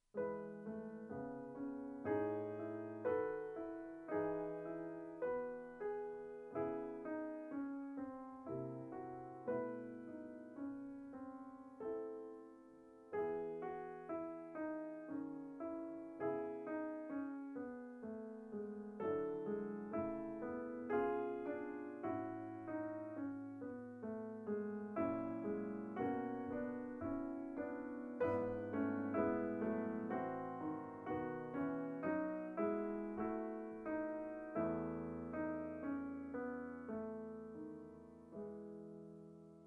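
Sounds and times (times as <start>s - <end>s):
piano prelude: 0.0s - 39.6s.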